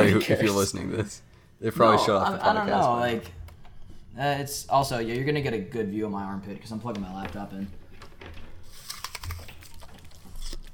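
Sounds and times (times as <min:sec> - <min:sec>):
speech: 0:00.1 - 0:03.4, 0:04.2 - 0:07.8
someone stress-eating an apple with crisp crunching bites: 0:08.8 - 0:10.7.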